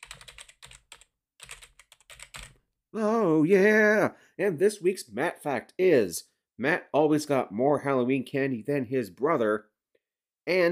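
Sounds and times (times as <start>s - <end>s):
computer keys typed in quick bursts: 0.0s - 2.6s
speech: 2.9s - 9.7s, 10.4s - 10.7s.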